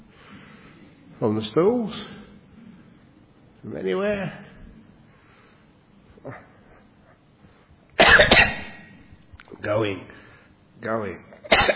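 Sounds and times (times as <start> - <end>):
speech: 1.2 - 2.2, 3.6 - 4.5, 6.2 - 6.5, 9.6 - 10.2, 10.8 - 11.7
person coughing: 8.0 - 8.9, 11.4 - 11.7.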